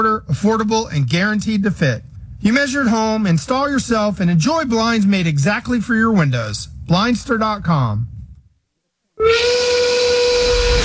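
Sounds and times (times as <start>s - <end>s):
speech: 0.0s - 8.1s, 9.2s - 10.0s
steam whistle blowing with hiss of escaping steam: 9.2s - 10.8s.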